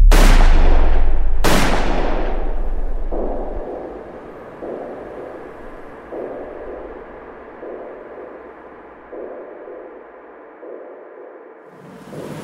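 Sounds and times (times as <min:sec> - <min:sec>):
gunshots fired at close range: 0:00.1 - 0:09.9
quiet rumbling ambience: 0:00.1 - 0:10.6.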